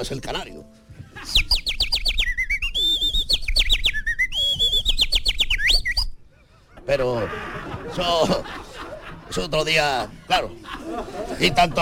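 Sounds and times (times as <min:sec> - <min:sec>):
speech: 0:00.0 - 0:01.4, 0:06.9 - 0:08.6, 0:09.3 - 0:11.8
laughter: 0:00.9 - 0:01.7, 0:06.2 - 0:11.8
house sparrow chirping: 0:01.0 - 0:06.6.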